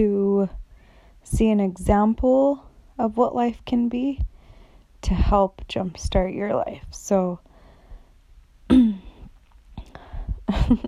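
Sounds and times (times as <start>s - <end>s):
speech: 0.0s - 0.6s, 1.2s - 4.3s, 5.0s - 7.5s, 10.7s - 10.8s
person clearing throat: 8.7s - 9.2s.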